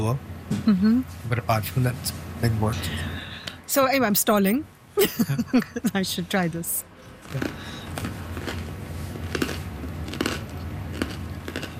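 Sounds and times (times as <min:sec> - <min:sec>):
speech: 0:00.0 - 0:07.7
person biting and chewing crusty bread: 0:07.2 - 0:11.7.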